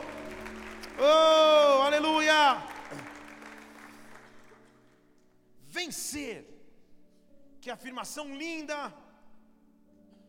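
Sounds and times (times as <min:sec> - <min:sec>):
church audience applauding during a prayer: 0:00.0 - 0:05.1
speech: 0:01.0 - 0:01.3, 0:05.9 - 0:06.5, 0:07.6 - 0:09.0.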